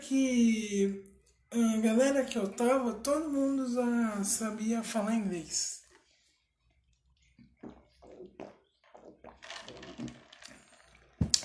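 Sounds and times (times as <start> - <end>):
speech: 0.1 - 5.8
person gulping and swallowing water: 7.2 - 11.4.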